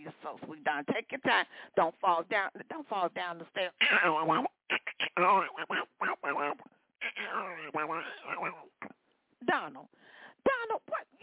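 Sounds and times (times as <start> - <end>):
speech: 0.3 - 6.7, 7.3 - 8.7, 9.5 - 10.8
person doing a squawky cartoon-duck voice impression: 3.9 - 8.9.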